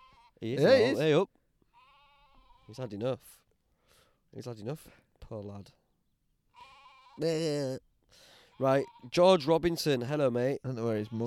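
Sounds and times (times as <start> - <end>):
sheep loud wavering bleat: 0.0 - 3.0, 6.5 - 7.8, 8.4 - 9.5, 10.8 - 11.2
speech: 0.4 - 1.4, 2.7 - 3.4, 4.3 - 5.8, 7.2 - 11.2.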